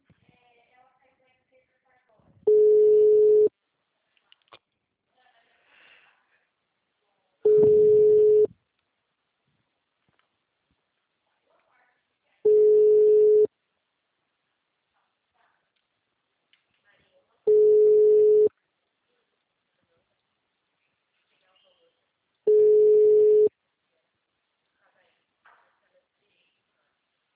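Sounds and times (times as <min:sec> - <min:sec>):
telephone ringback tones as calls are dialled: 0:02.5 - 0:03.5, 0:07.5 - 0:08.5, 0:12.5 - 0:13.5, 0:17.5 - 0:18.5, 0:22.5 - 0:23.5.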